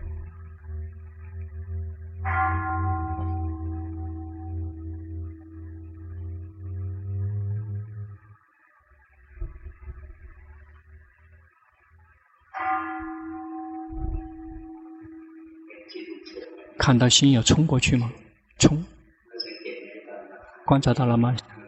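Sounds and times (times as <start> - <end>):
meditation bell struck during silent meditation practice: 0.0 - 8.4, 12.6 - 18.4
quiet low rumble: 0.0 - 19.2
speech: 16.8 - 18.9, 20.7 - 21.5.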